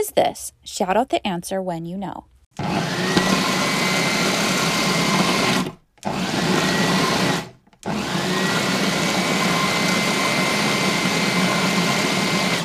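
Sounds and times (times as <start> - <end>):
speech: 0.0 - 3.2
motorized electric blender whirring: 2.6 - 12.6.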